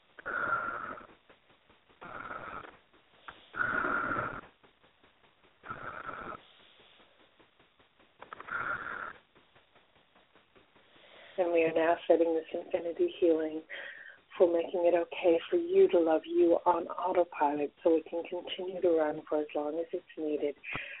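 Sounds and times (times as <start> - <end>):
deep wheezy breaths: 0.0 - 4.9, 5.5 - 11.4, 13.6 - 14.4, 20.6 - 20.9
speech: 11.4 - 20.9.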